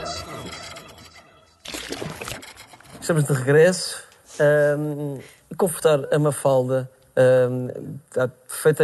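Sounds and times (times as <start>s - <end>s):
water pouring into a glass: 1.7s - 2.5s
speech: 3.1s - 8.8s.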